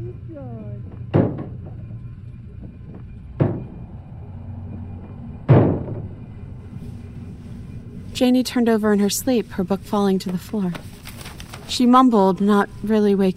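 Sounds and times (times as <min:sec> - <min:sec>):
low steady hum: 0:00.0 - 0:13.3
back door slamming shut: 0:03.4 - 0:03.8, 0:05.5 - 0:06.1
speech: 0:08.2 - 0:10.9, 0:11.7 - 0:13.3.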